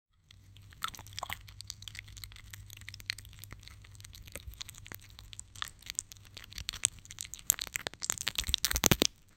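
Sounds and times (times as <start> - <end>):
very fast crunching: 0.4 - 9.3.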